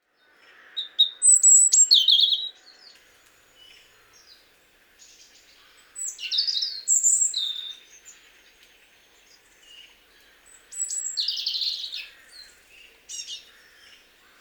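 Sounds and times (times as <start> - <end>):
European robin Erithacus rubecula singing: 0.4 - 4.4, 5.0 - 8.3, 9.2 - 14.3.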